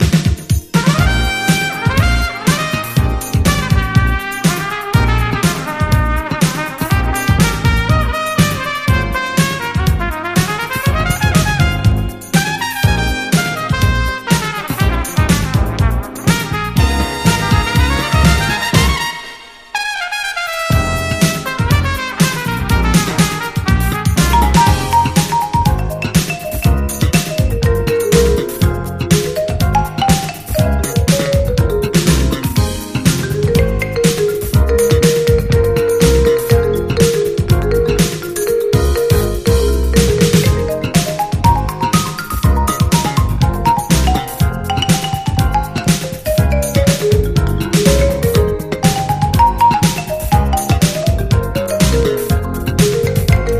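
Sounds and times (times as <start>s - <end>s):
jazz rap instrumental mix: 0.0s - 53.5s.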